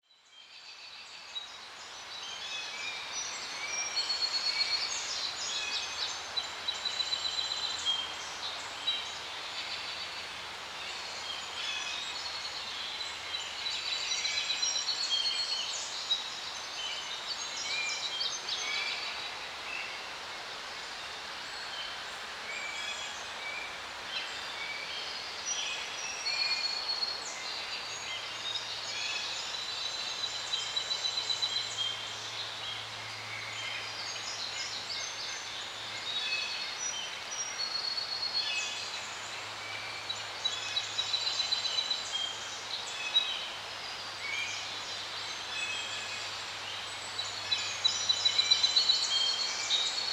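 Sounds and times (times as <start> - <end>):
forest birds: 0.0 - 50.1.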